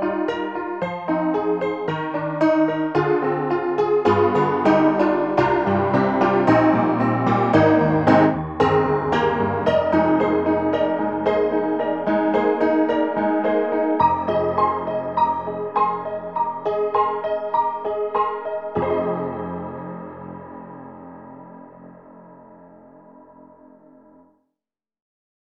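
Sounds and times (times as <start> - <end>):
ragtime music: 0.1 - 19.6.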